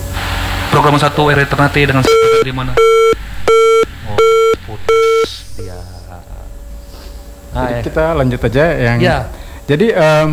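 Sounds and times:
speech: 0:00.8 - 0:03.2, 0:07.6 - 0:10.3
electronic telephone beeps from an incoming call to a radio programme in Ternate: 0:02.1 - 0:05.8.

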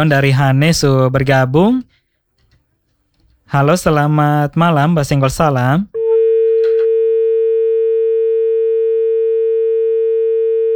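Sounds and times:
speech: 0:00.0 - 0:02.0, 0:03.5 - 0:06.0
telephone busy tone after a phone call disconnects: 0:06.0 - 0:10.7.

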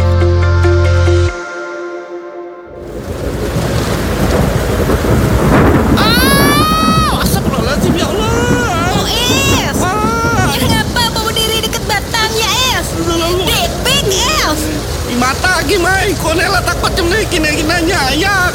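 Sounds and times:
brief musical tone: 0:00.0 - 0:02.9
low rumbling thunder: 0:02.7 - 0:18.5
steady loud rain in a thunderstorm: 0:02.7 - 0:18.5.

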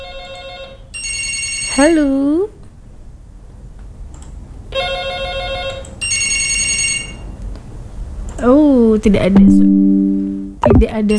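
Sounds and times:
telephone ringing with bright electronic tones for an incoming call: 0:00.0 - 0:02.2, 0:04.7 - 0:07.3
speech: 0:01.8 - 0:02.6, 0:09.0 - 0:10.0, 0:10.6 - 0:11.1.

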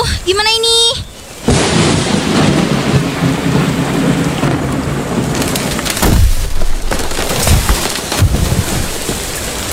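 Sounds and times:
heavy rain in a forest: 0:00.0 - 0:09.7
deep rumbling thunder: 0:01.3 - 0:09.6
sharper cracks: 0:05.2 - 0:09.2.

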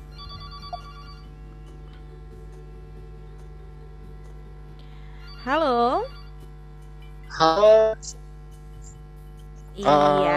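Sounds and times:
low electrical hum: 0:00.0 - 0:10.3
telephone on a regular phone line ringing: 0:00.1 - 0:01.4, 0:05.2 - 0:06.4
speech: 0:05.4 - 0:06.2, 0:07.4 - 0:08.2, 0:09.8 - 0:10.3.

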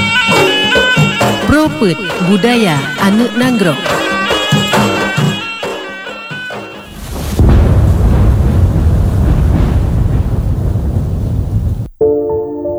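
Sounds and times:
music: 0:00.0 - 0:07.0, 0:12.0 - 0:12.7
speech: 0:01.8 - 0:04.0
deep rumbling thunder: 0:06.8 - 0:12.0
heavy rain as the rainy season arrives: 0:06.8 - 0:12.0.

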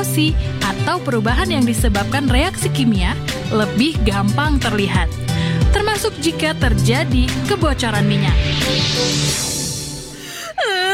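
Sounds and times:
speech: 0:00.1 - 0:09.5
person crying loudly: 0:10.2 - 0:10.9.

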